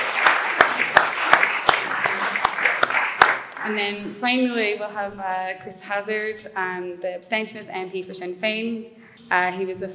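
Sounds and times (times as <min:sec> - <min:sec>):
crowd applauding: 0:00.0 - 0:03.8
sharp louder claps from: 0:00.0 - 0:03.8
speech: 0:03.6 - 0:09.9.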